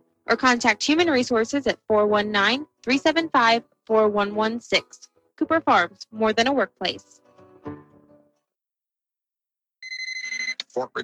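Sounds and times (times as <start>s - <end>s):
speech: 0.3s - 7.8s, 10.8s - 11.0s
cell phone ringing with electronic trill: 9.8s - 11.0s.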